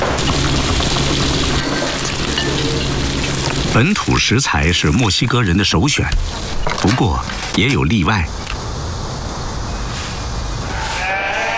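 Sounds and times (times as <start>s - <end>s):
steady rushing outdoor noise: 0.0s - 11.0s
speech: 3.8s - 8.4s
goat bleating: 10.7s - 11.5s.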